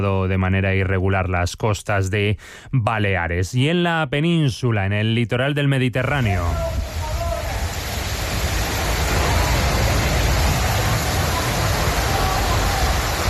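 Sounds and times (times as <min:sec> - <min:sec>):
speech: 0:00.0 - 0:06.8
strong wind gusts: 0:06.2 - 0:13.2
torrential downpour of heavy rain: 0:06.2 - 0:13.2.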